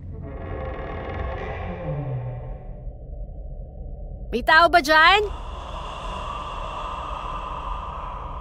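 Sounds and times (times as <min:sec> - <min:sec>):
bathroom door creaking slowly open: 0:00.0 - 0:02.7
speech: 0:04.3 - 0:05.4.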